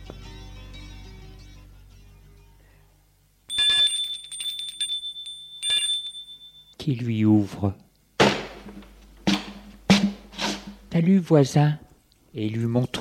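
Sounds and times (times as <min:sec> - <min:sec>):
apartment doorbell ringing: 0:03.5 - 0:06.8
speech: 0:06.9 - 0:07.8, 0:11.0 - 0:11.8, 0:12.4 - 0:13.0.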